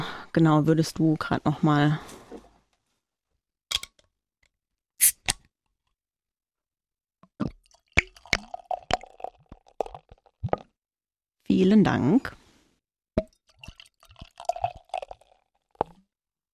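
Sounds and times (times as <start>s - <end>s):
speech: 0.4s - 2.2s, 11.5s - 12.4s
bottle opening: 5.0s - 5.4s
drink pouring: 7.4s - 10.7s, 13.2s - 16.1s.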